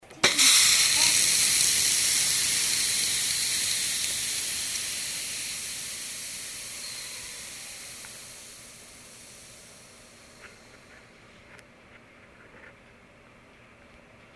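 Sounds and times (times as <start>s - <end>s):
steam being let off: 0.0s - 11.2s.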